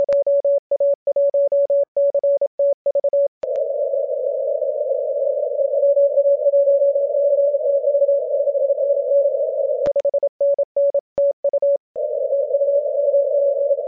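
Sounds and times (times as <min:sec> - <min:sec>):
7 MHz CW radio signal: 0:00.0 - 0:13.8.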